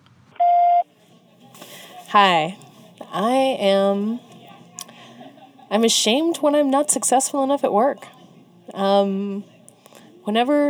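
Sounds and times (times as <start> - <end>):
faint room noise: 0.0 - 10.6
steady electronic beep in a recording booth: 0.4 - 0.8
breath or shuffle: 1.0 - 3.0
speech: 2.1 - 4.3, 5.7 - 8.1, 8.7 - 9.5, 10.3 - 10.6.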